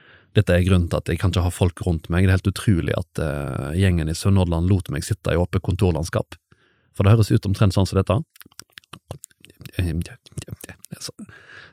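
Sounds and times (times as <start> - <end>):
speech: 0.4 - 11.7
person mumbling text in a breathy whisper: 8.3 - 11.6.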